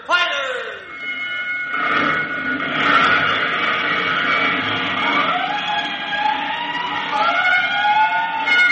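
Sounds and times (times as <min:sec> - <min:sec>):
fire alarm bells: 0:00.0 - 0:08.7
wailing emergency sirens for a fire call: 0:03.1 - 0:08.7.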